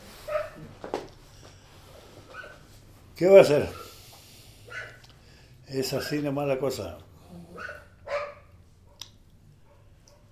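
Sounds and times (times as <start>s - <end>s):
quiet noise: 0.0s - 10.3s
dogs barking: 0.2s - 0.7s, 2.2s - 2.7s, 3.6s - 5.1s, 5.9s - 6.4s, 7.6s - 10.3s
dog yelping: 0.3s - 0.6s, 2.3s - 2.6s, 4.7s - 5.0s, 7.6s - 8.6s
speech: 3.2s - 3.8s, 5.7s - 7.4s.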